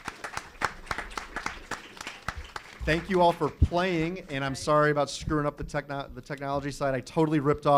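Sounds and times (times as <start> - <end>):
small audience applauding: 0.0 - 4.6
speech: 2.9 - 7.7.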